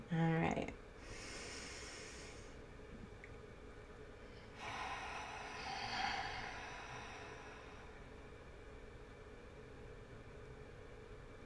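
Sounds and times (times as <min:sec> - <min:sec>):
deep breath taken during a group breathing exercise: 0:01.0 - 0:02.7, 0:04.2 - 0:08.4.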